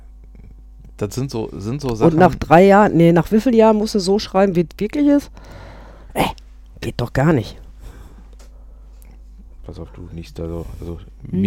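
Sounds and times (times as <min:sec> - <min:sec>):
low steady hum: 0:00.0 - 0:11.4
speech: 0:01.0 - 0:07.6, 0:09.7 - 0:11.4
dog snorting: 0:06.2 - 0:06.4.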